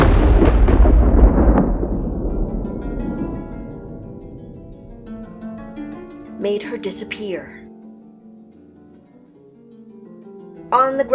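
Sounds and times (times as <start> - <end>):
thunder crack from lightning strike rolling into deep rumble: 0.0 - 6.3
speech: 6.5 - 7.6, 10.7 - 11.1.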